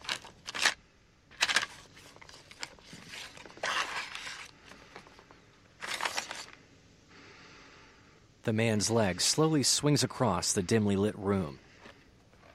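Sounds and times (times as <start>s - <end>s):
paper jacket rustling as a bare foot pulls out a vinyl record: 0.0s - 6.6s
vinyl record sliding out of its paper jacket: 1.4s - 5.1s, 5.8s - 6.6s
speech: 8.4s - 11.6s.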